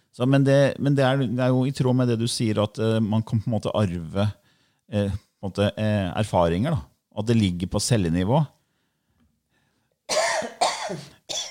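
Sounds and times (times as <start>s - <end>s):
speech: 0.2s - 8.6s, 10.9s - 11.4s
person coughing harshly: 10.1s - 11.4s.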